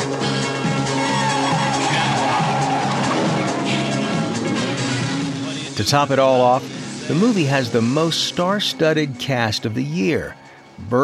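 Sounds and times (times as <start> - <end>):
tires squealing: 0.1 - 7.6
Lamborghini Countach sports car engine screaming at high revs in a cop chase: 0.3 - 5.7
speech: 5.8 - 11.0.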